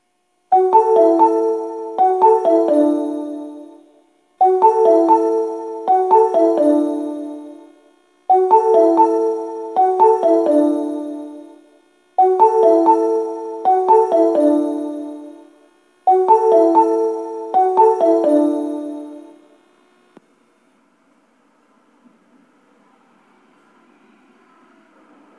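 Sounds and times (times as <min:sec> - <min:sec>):
electronic train arrival melody on a subway platform: 0:00.5 - 0:19.6.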